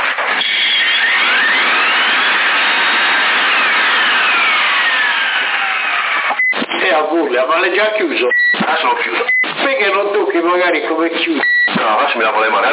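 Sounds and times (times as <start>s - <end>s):
Folletto vacuum cleaner motor running after a repair: 0.4s - 6.5s
speech: 7.2s - 12.7s.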